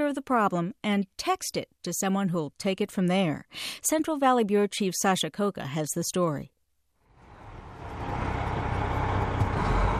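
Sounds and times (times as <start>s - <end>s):
speech: 0.1s - 6.6s
tour bus driving on rural road: 7.1s - 9.9s.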